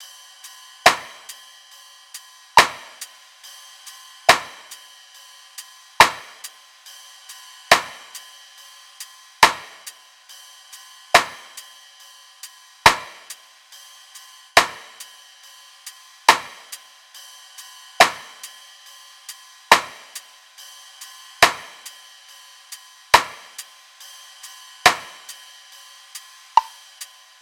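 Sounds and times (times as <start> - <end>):
drum top loop at 70 bpm: 0.4 - 1.4, 2.1 - 4.8, 6.0 - 6.5, 7.2 - 8.2, 9.4 - 10.0, 11.1 - 11.6, 12.8 - 13.4, 14.6 - 15.1, 15.8 - 16.8, 19.7 - 20.2, 21.4 - 22.0, 22.7 - 25.4, 26.1 - 27.1.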